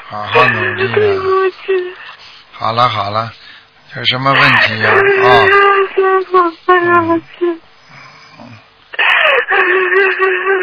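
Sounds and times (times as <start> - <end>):
speech: 0.1 - 2.0, 2.6 - 7.6, 9.6 - 10.6
person crying while apologizing: 0.2 - 1.9, 4.3 - 7.6, 8.9 - 10.6.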